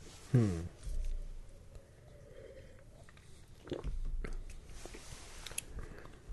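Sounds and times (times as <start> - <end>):
speech: 0.3 - 0.8
swallow: 2.1 - 6.3
sipping beer with soft slurping: 2.4 - 6.3.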